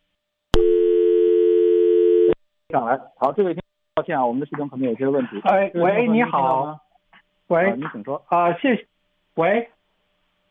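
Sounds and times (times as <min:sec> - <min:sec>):
telephone line tone of an incoming listener call: 0:00.6 - 0:02.4
speech: 0:02.7 - 0:06.8, 0:07.5 - 0:09.8.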